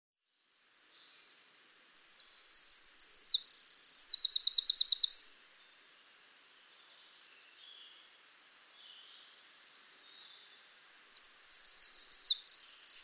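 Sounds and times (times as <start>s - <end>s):
Eurasian wren Troglodytes troglodytes singing: 1.7s - 5.3s, 8.6s - 13.0s.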